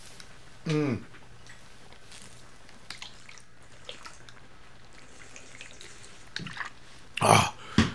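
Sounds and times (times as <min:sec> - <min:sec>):
person swallowing pills with water: 0:00.6 - 0:01.1, 0:07.2 - 0:07.9.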